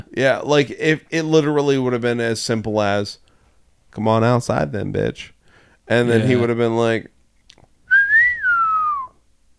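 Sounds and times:
speech: 0.2s - 3.2s, 3.9s - 7.2s
whistled tune in the style of an old western film theme: 7.9s - 9.2s.

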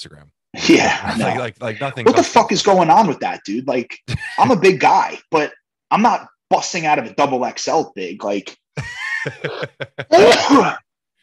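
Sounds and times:
speech: 0.0s - 10.8s
laughter: 0.8s - 2.4s, 4.1s - 4.8s, 8.8s - 10.6s
loud sneeze: 10.1s - 10.8s.

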